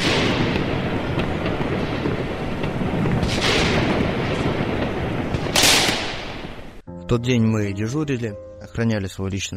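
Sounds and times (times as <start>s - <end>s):
heavy explosions of 400-millimetre munitions dropped by fighter jets: 0.0s - 6.8s
speech: 7.1s - 9.5s.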